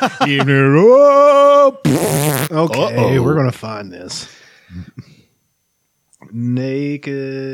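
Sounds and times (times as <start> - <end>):
speech: 0.0 - 5.1, 6.3 - 7.5
person vocally imitating a man farting after urinating: 1.8 - 3.3.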